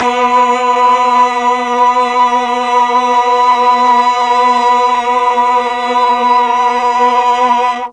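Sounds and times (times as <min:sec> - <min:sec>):
mellotron eight-voice choir: 0:00.0 - 0:07.9.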